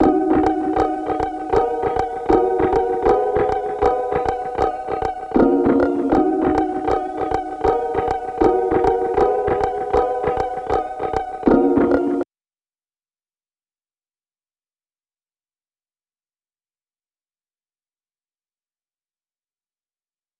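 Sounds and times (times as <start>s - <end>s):
157 BPM D sharp minor synth melody loop: 0.0s - 12.2s.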